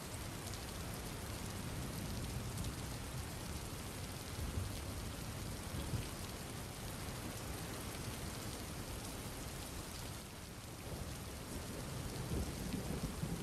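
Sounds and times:
heavy rain falling: 0.1 - 13.4
deep thunder rumbling: 11.7 - 13.4.

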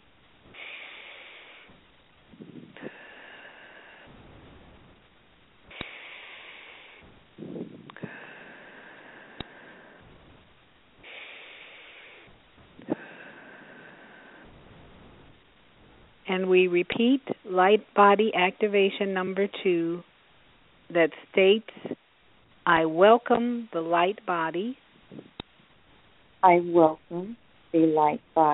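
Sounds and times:
slow deep breaths during a guided meditation exercise: 0.5 - 5.0, 5.7 - 15.8
speech: 16.3 - 20.1, 20.9 - 21.9, 22.7 - 24.8, 26.4 - 28.5.

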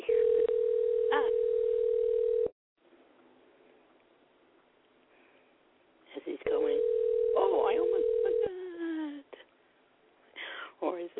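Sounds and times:
steady telephone tone while a number is dialed: 0.0 - 2.5, 6.7 - 8.5.

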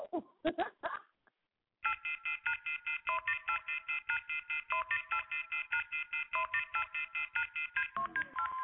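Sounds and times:
electronic telephone keypad tones: 1.8 - 8.6.

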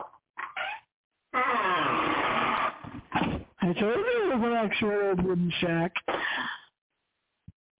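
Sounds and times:
wooden door creaking open: 0.4 - 3.5
speech: 3.7 - 6.5.

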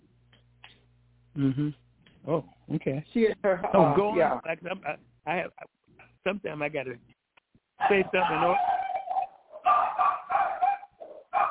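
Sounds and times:
speech: 1.4 - 7.1, 7.8 - 8.7
dog barking: 7.8 - 11.4.

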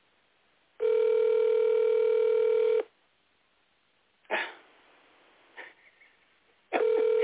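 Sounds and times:
phone ringback tone on an outgoing call: 0.8 - 2.9, 6.8 - 7.2.

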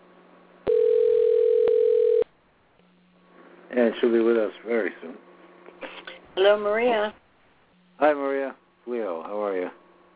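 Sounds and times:
telephone dial tone while placing a call: 0.7 - 2.2
speech: 3.8 - 5.3, 6.4 - 7.2, 8.0 - 9.8.

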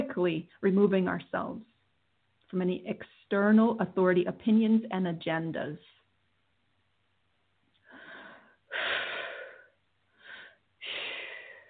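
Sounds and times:
speech: 0.2 - 1.7, 2.5 - 6.0
deep audible breathing: 7.8 - 11.6.

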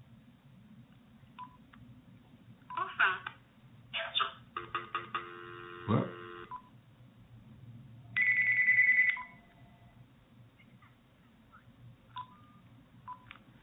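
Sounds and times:
low hum: 0.0 - 13.6
telephone ringing with an incoming call: 4.6 - 6.6, 8.2 - 9.8.

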